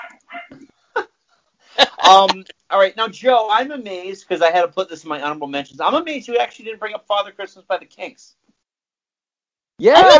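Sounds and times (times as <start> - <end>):
dog yelping whinily: 0.0 - 0.6
speech: 2.0 - 8.4, 9.8 - 10.1.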